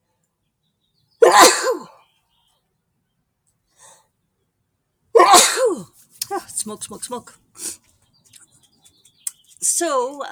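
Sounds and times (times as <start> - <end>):
person sneezing: 1.2 - 1.9, 5.2 - 6.5
speech: 6.6 - 7.7, 9.8 - 10.3.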